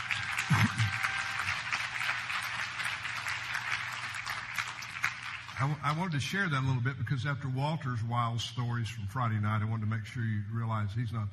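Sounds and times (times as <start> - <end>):
audience applauding: 0.0 - 6.0
speech: 5.6 - 11.3.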